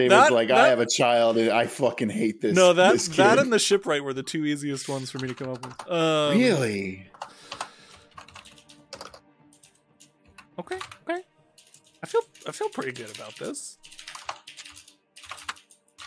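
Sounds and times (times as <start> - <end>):
speech: 0.0 - 7.3, 10.6 - 11.2, 12.1 - 13.8
clicky computer keyboard typing: 4.8 - 6.1, 7.1 - 11.0, 11.6 - 16.0.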